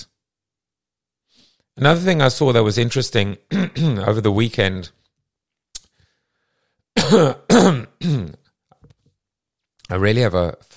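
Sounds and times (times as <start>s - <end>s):
speech: 1.8s - 5.0s, 7.1s - 8.3s, 9.9s - 10.7s
person clearing throat: 3.5s - 4.0s, 7.0s - 8.5s.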